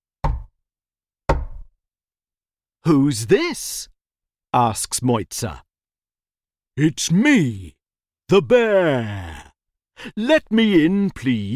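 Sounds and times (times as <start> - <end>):
knocking on a door: 0.2 - 0.6, 1.3 - 1.8
speech: 2.8 - 3.9, 4.5 - 5.7, 6.8 - 11.5.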